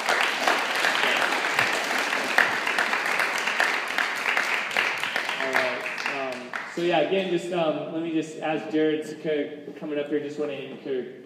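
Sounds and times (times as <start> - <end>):
crowd applause in a large room: 0.0 - 6.9
speech: 6.8 - 11.2.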